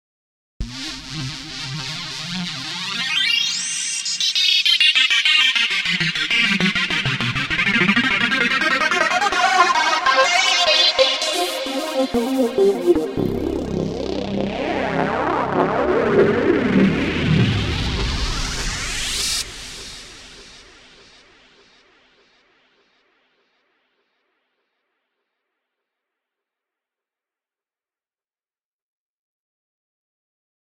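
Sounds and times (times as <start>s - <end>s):
synth lead: 0.6s - 21.0s.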